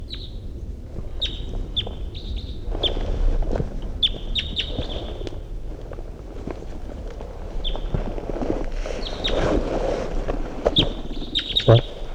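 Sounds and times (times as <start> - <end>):
wind noise: 0.0 - 12.1
wild bird chirping song phrases in flight: 1.2 - 3.0, 4.0 - 5.2, 10.7 - 12.1.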